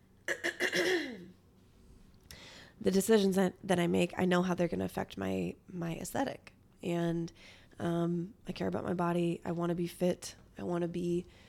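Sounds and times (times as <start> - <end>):
person clearing throat: 0.3 - 1.3
speech: 2.8 - 11.4.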